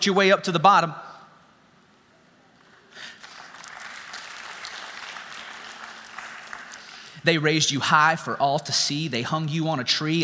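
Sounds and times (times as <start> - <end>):
speech: 0.0 - 1.1, 7.2 - 10.2
audience applause: 3.0 - 7.2.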